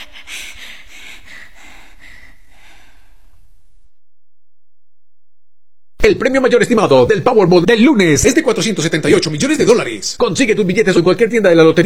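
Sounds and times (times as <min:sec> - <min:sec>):
heavy rapid breathing: 0:00.0 - 0:03.5
speech: 0:06.0 - 0:11.8.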